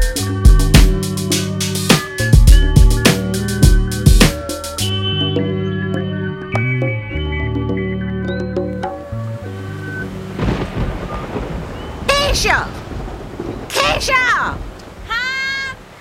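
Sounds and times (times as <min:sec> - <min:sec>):
sustained musical tones: 0:00.2 - 0:12.0
deep rumble of thunder during a thunderstorm: 0:10.0 - 0:16.0.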